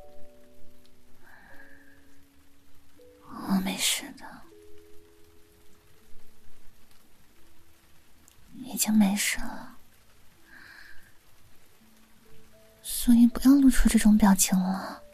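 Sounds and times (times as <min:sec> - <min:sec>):
soft steady rain pattering: 0:00.0 - 0:15.1
person whispering: 0:03.2 - 0:04.6, 0:08.5 - 0:09.8, 0:12.9 - 0:15.1
speech: 0:08.8 - 0:09.8, 0:13.0 - 0:15.0.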